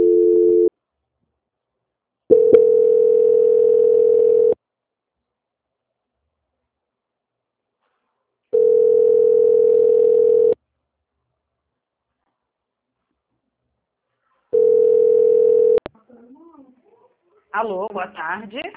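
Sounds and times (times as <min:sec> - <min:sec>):
telephone line tone during a call transfer: 0:00.0 - 0:00.7, 0:02.3 - 0:04.6, 0:08.6 - 0:10.6, 0:14.6 - 0:15.8
speech: 0:17.6 - 0:18.7.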